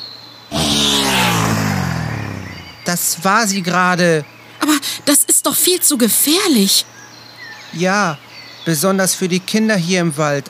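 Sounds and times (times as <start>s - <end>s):
motorcycle speeding past: 0.5s - 3.8s
speech: 2.9s - 7.1s, 7.7s - 10.4s.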